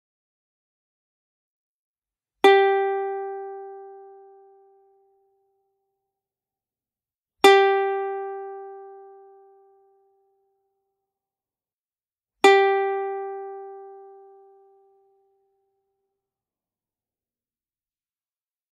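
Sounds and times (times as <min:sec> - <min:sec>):
ukulele G string: 0:02.4 - 0:04.8, 0:07.4 - 0:09.2, 0:12.4 - 0:14.7.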